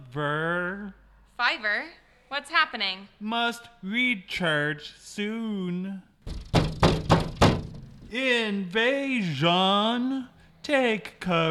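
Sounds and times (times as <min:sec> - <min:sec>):
speech: 0:00.1 - 0:06.1, 0:08.1 - 0:11.4
heavy knocks thudding against a door: 0:06.2 - 0:08.2.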